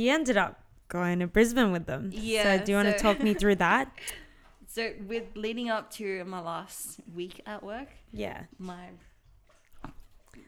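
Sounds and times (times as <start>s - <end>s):
speech: 0.0s - 9.1s
laughter: 2.6s - 4.1s
wet slurping and smacking sounds: 7.4s - 10.4s.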